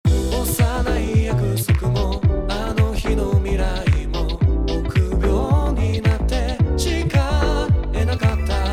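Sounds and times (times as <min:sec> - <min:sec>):
wet chord: 0:00.1 - 0:08.7.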